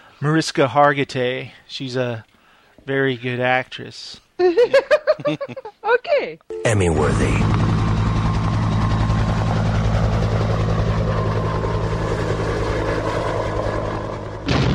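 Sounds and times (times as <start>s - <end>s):
speech: 0.2s - 7.6s
laughter: 4.4s - 5.8s
rescue helicopter flying overhead: 6.5s - 14.6s.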